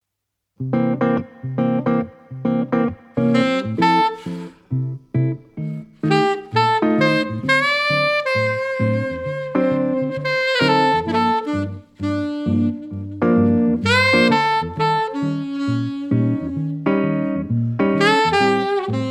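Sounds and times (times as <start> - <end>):
saxophone duo: 0.8 - 5.0, 5.8 - 19.0.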